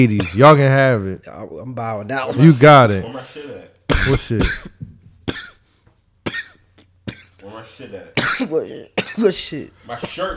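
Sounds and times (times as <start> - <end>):
speech: 0.0 - 5.4, 7.6 - 10.3
person coughing after hitting a vape: 3.9 - 5.6, 6.3 - 7.4, 8.2 - 10.3.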